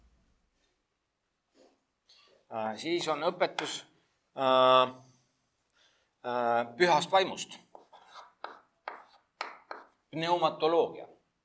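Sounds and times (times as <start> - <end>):
speech: 2.5 - 5.1, 6.2 - 7.6, 10.1 - 11.1
pens scribbling notes on paper during a theology lecture: 7.8 - 10.0.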